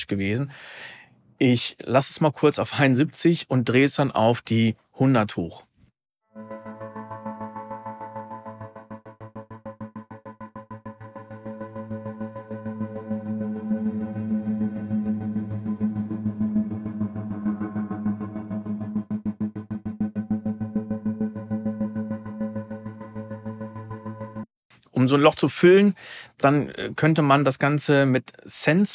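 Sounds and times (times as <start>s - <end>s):
speech: 0.0s - 5.7s, 25.1s - 28.9s
sustained harmonic music tone with tremolo pulsing: 6.3s - 24.5s.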